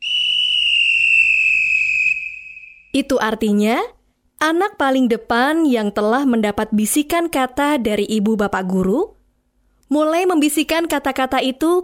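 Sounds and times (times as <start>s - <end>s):
long high-pitched whistle blast signalling a children's game: 0.0s - 3.0s
speech: 3.0s - 9.2s, 9.9s - 11.8s.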